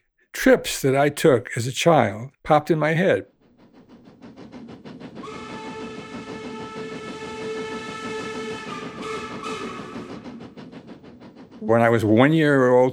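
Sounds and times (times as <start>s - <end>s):
speech: 0.4s - 3.3s, 11.7s - 12.9s
train rolling along rails with rhythmic clacking: 2.9s - 12.9s
long loud train whistle: 5.2s - 10.5s.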